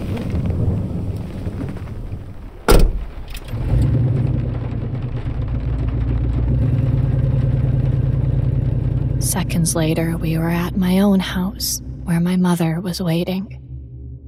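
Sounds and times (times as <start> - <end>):
truck engine rumbling as the vehicle pulls away and drives: 0.0 - 14.2
sharp thunk: 2.7 - 3.2
speech: 9.4 - 13.6.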